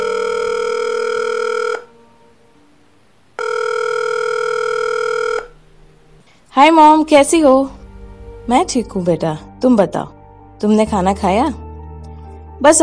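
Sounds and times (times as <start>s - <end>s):
buzzing ringback tones from an outgoing phone call: 0.0s - 2.5s, 3.4s - 6.3s
speech: 6.6s - 7.8s, 8.5s - 11.6s, 12.6s - 12.8s.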